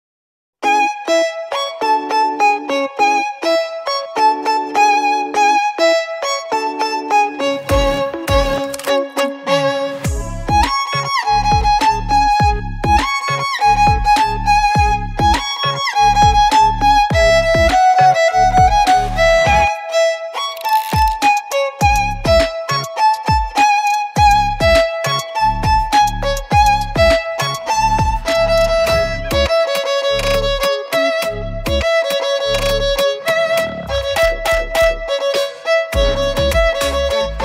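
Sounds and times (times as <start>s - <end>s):
violin playing a cover: 0.6s - 37.4s.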